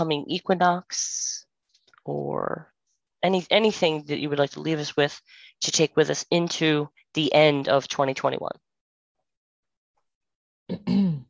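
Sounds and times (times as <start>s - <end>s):
speech: 0.0s - 1.4s, 2.0s - 8.6s, 10.7s - 11.2s
throat clearing from a tickle in the throat: 10.7s - 11.2s.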